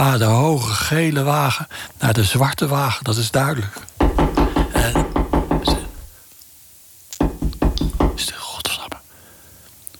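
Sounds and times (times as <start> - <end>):
speech: 0.0 - 3.9
loud knocks: 4.0 - 6.1, 7.2 - 8.3.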